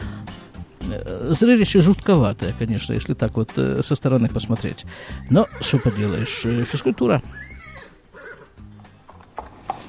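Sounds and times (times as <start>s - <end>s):
speech: 0.9s - 7.4s
horse hooves clopping on a hard surface: 4.4s - 9.8s
horse giving a loud shrill whinny: 5.1s - 8.9s.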